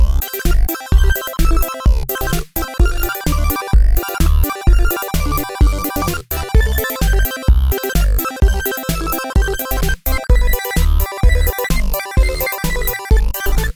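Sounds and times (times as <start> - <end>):
song: 0.2 - 13.7.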